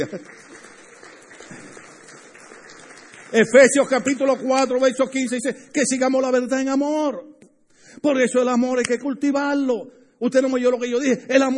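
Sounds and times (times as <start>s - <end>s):
speech: 0.0s - 0.6s, 3.3s - 11.5s
large group applauding: 0.0s - 5.5s.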